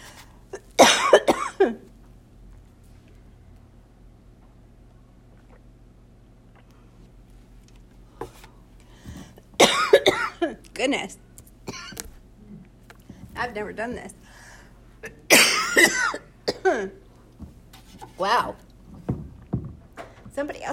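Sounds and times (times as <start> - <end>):
faint hum: 0.0 - 20.7
person coughing harshly: 0.6 - 1.9, 9.6 - 10.6, 11.7 - 12.0, 15.0 - 17.0
speech: 1.6 - 1.9, 10.8 - 11.2, 13.4 - 14.2, 18.2 - 18.6, 20.4 - 20.7.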